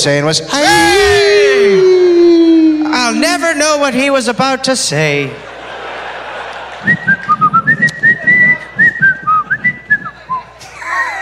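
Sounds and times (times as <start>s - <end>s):
speech: 0.0s - 1.8s, 3.1s - 5.5s
laughter: 5.1s - 11.2s
person whistling a short lively tune: 6.9s - 10.6s.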